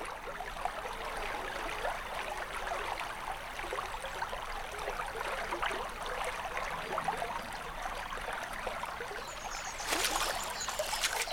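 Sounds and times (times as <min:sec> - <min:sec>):
river water babbling and gurgling: 0:00.0 - 0:11.3
river water splashing surge: 0:09.2 - 0:11.3.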